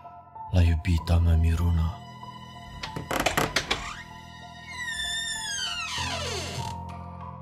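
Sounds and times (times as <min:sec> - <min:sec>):
speech: 0:00.5 - 0:02.0
heavy oak door creaking open: 0:02.6 - 0:07.0.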